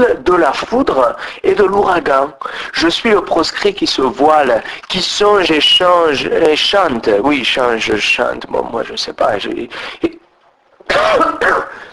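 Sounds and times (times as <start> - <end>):
speech: 0.0 - 10.2, 10.9 - 11.9
tired person with a sore throat coughing harshly: 10.9 - 11.9.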